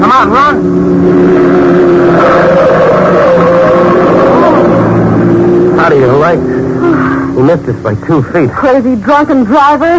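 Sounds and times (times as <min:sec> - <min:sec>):
car engine roaring as it speeds through an intersection: 0:00.0 - 0:08.7
speech: 0:00.1 - 0:02.7, 0:05.9 - 0:06.6, 0:07.4 - 0:09.9.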